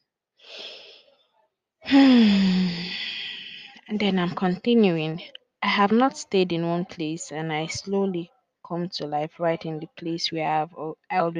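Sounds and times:
deep breath with a long exhale and low voiced sigh: 0.4s - 1.1s, 1.9s - 3.7s
speech: 1.9s - 2.3s, 4.0s - 11.3s.

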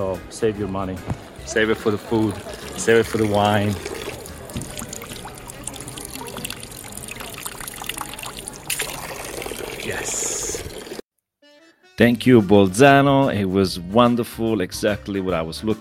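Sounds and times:
speech: 0.0s - 4.6s, 12.0s - 15.7s
faint outdoor bustle: 0.0s - 11.0s
water trickling from a public drinking fountain in Bolzano: 1.2s - 11.0s.

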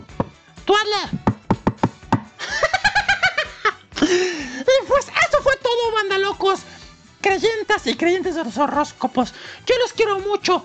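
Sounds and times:
sharp knocks on a door: 0.0s - 0.4s, 1.1s - 2.4s
speech: 0.7s - 1.2s, 6.0s - 10.6s
person laughing rhythmically: 2.4s - 5.1s.

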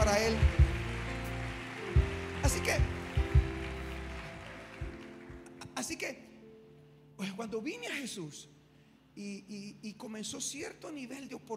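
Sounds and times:
deep low thumps: 0.0s - 1.3s, 1.9s - 4.2s
audience applause: 0.0s - 5.7s
speech: 7.5s - 8.6s, 9.2s - 11.5s.

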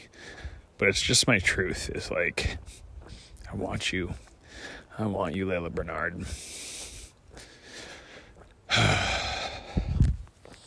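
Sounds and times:
heavy breathing: 0.0s - 0.8s, 2.4s - 3.5s, 4.1s - 5.0s, 6.2s - 10.6s
speech: 0.8s - 2.8s, 3.5s - 6.6s.

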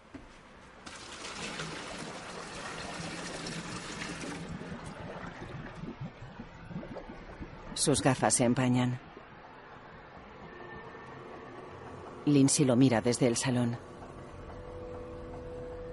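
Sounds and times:
water splashing and trickling: 0.8s - 10.2s
water poured off spaghetti from a pot: 0.9s - 7.9s
speech: 7.8s - 9.1s, 12.3s - 13.9s.

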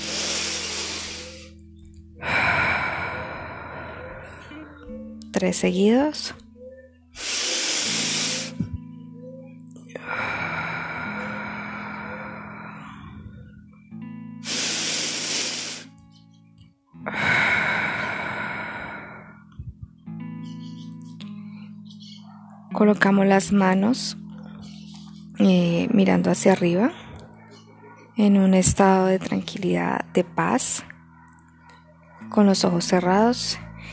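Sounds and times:
deep forceful breathing in a breathing exercise: 0.0s - 1.6s, 2.2s - 5.0s, 7.2s - 8.8s, 10.0s - 13.7s, 14.4s - 16.0s, 17.0s - 20.0s, 33.6s - 33.9s
soft sustained music: 0.0s - 33.9s
speech: 5.4s - 6.4s, 22.8s - 24.2s, 25.4s - 27.0s, 28.2s - 30.9s, 32.4s - 33.9s.

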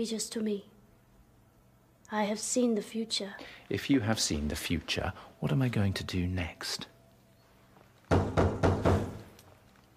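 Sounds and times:
speech: 0.0s - 0.8s, 2.1s - 6.9s
firm knocking on a wooden door: 8.1s - 9.3s.

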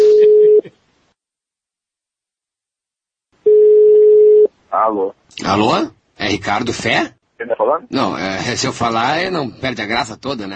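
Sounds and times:
telephone ringback tone over a noisy line: 3.5s - 4.5s
speech: 4.8s - 10.5s.

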